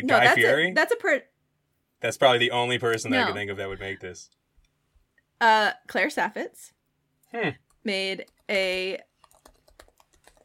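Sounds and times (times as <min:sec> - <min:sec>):
speech: 0:00.0 - 0:01.3, 0:02.0 - 0:04.4, 0:05.4 - 0:09.1
fingers typing on a computer keyboard: 0:07.7 - 0:10.4.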